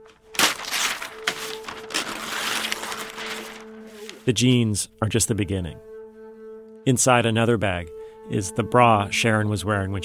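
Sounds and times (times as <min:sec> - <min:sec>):
sheets of paper being torn off a roll: 0:00.0 - 0:04.3
speech: 0:04.2 - 0:05.9, 0:06.9 - 0:10.0.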